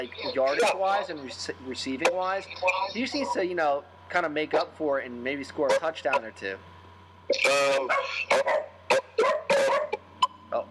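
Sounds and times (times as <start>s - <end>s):
speech: 0.0s - 6.7s, 7.3s - 8.7s
dog barking: 3.1s - 3.4s, 7.8s - 10.0s.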